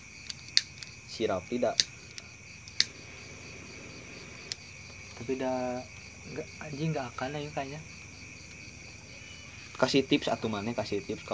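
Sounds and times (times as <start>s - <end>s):
faint steady hiss: 0.0s - 11.3s
lighter being flicked: 0.2s - 0.9s, 1.8s - 3.0s
speech: 1.2s - 1.9s, 5.2s - 7.9s, 9.8s - 11.3s.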